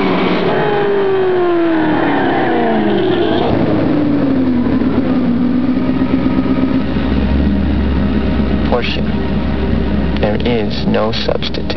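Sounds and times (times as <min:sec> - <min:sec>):
Porsche car engine: 0:00.0 - 0:11.7.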